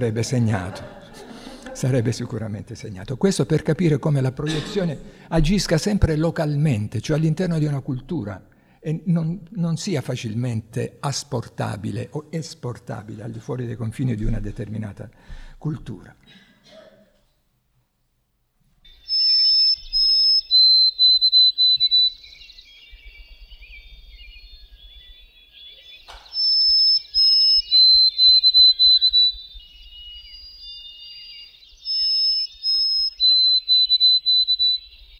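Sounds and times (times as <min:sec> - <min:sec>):
speech: 0:00.0 - 0:01.0, 0:01.8 - 0:16.4
laughter: 0:00.2 - 0:02.1, 0:04.4 - 0:05.0
white-throated sparrow singing: 0:18.8 - 0:35.1.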